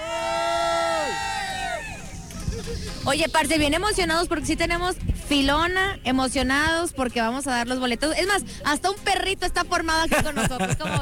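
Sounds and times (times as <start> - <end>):
crowd of people waiting in a ticket queue cheering and shouting: 0.0 - 2.7
laughter: 2.2 - 3.0, 10.0 - 11.0
speech: 3.1 - 11.0.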